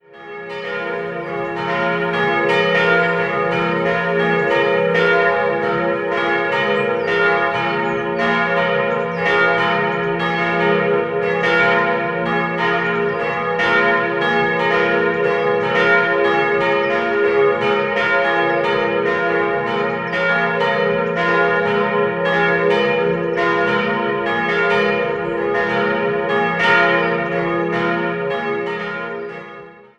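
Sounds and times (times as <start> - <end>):
Fürth-Dambach church bells: 0.0 - 29.9.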